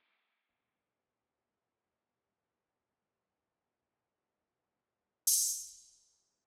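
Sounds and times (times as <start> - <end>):
cymbal in sad analog music: 5.3 - 6.0.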